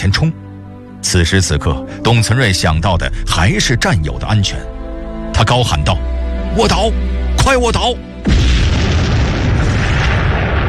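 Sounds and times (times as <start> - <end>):
speech: 0.0 - 4.8, 5.4 - 8.5
satchel charge blowing up an enemy bunker in wartime combat: 8.2 - 10.6.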